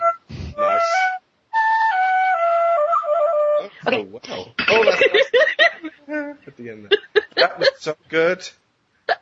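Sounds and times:
penny whistle solo: 0:00.0 - 0:03.7
speech: 0:03.9 - 0:05.7, 0:06.6 - 0:08.6
laughter: 0:04.6 - 0:06.0, 0:06.9 - 0:07.8.

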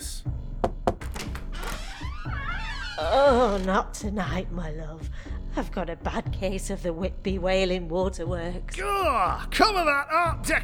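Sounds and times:
chamber door handle turning: 0:00.6 - 0:03.8
door latch mechanism rattling and scraping: 0:00.7 - 0:03.8
speech: 0:03.0 - 0:10.6.

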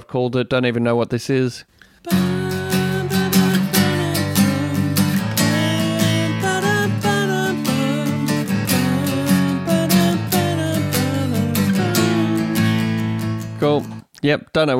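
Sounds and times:
speech: 0:00.1 - 0:02.3, 0:13.7 - 0:14.7
instrumental music with melody over a chord progression: 0:02.1 - 0:14.0.

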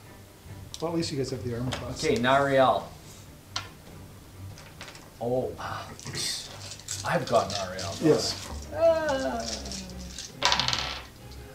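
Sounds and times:
speech: 0:00.8 - 0:03.0, 0:05.2 - 0:09.8
dice clattering onto a hard floor: 0:04.5 - 0:05.1, 0:06.0 - 0:11.2.

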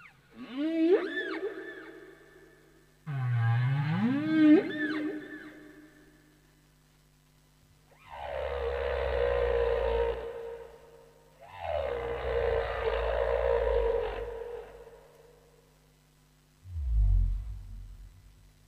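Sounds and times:
humpback whale song moaning calls: 0:00.0 - 0:02.5, 0:03.1 - 0:06.1, 0:07.9 - 0:15.5, 0:16.6 - 0:18.3.

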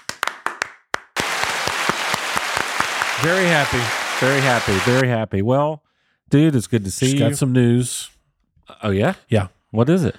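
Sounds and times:
hands clapping: 0:00.0 - 0:05.0
speech: 0:03.2 - 0:08.2, 0:08.8 - 0:10.1.

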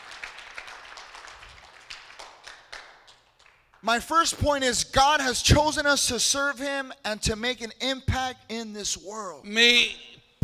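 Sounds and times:
audience applause at a church service: 0:00.0 - 0:03.8
sharper individual claps: 0:00.0 - 0:04.4
speech: 0:03.8 - 0:10.4.

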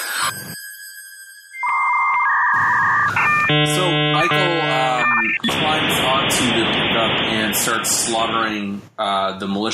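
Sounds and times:
dial-up modem connecting with static, tones and screeching: 0:02.2 - 0:05.8
speech: 0:03.5 - 0:09.7.

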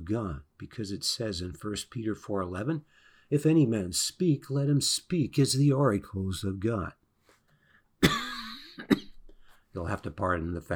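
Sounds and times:
speech: 0:00.1 - 0:07.0, 0:09.8 - 0:10.7
harsh cough from tickly irritation in the lungs: 0:08.0 - 0:09.3.

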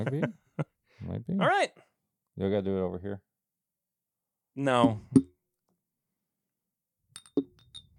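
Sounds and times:
speech: 0:00.0 - 0:01.8, 0:02.4 - 0:03.3, 0:04.6 - 0:05.3
drinking glasses clinking in a toast: 0:07.2 - 0:07.9.

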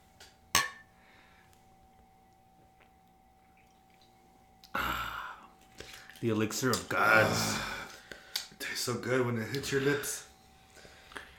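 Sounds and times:
beer bottles clinking together in a toast: 0:00.6 - 0:00.9
speech: 0:06.2 - 0:07.8, 0:08.8 - 0:10.3.

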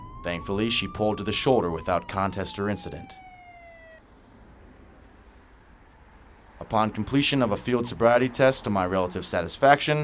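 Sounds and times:
police car siren wailing: 0:00.0 - 0:04.0, 0:06.6 - 0:09.0
speech: 0:00.2 - 0:03.2, 0:06.7 - 0:10.0.

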